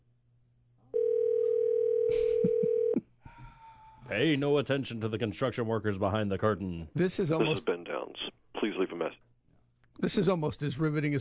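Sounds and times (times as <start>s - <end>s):
telephone dial tone while placing a call: 1.0s - 3.0s
speech: 4.1s - 9.3s, 10.0s - 11.1s.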